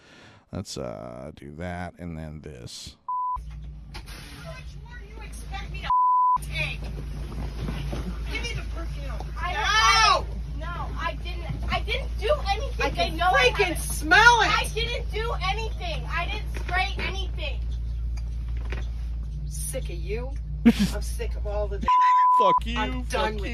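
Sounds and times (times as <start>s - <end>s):
low constant rumble: 0.1s - 23.5s
speech: 0.5s - 3.0s, 12.8s - 17.3s, 19.7s - 23.5s
censor bleeps: 3.1s - 3.4s, 5.9s - 6.4s, 21.8s - 22.8s.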